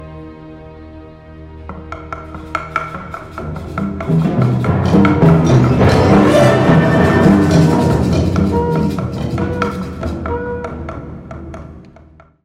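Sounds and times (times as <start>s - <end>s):
cuica: 1.7s - 12.4s
roncador drum: 1.7s - 12.4s.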